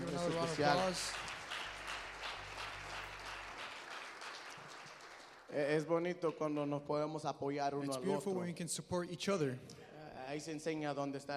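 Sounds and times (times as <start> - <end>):
audience applause at a worship gathering: 0.0 - 5.6
speech: 0.2 - 1.2, 5.5 - 11.3.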